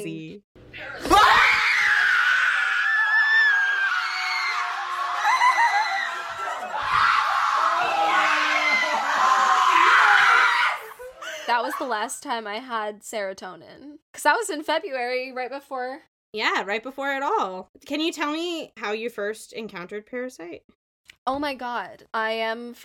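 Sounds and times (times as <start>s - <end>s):
group of people screaming excitedly: 0.8s - 11.1s
speech: 11.8s - 22.8s.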